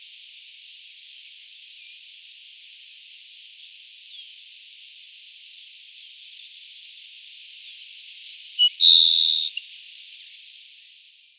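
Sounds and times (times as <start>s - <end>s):
Grassland Sparrow Ammodramus humeralis song: 8.6s - 9.6s.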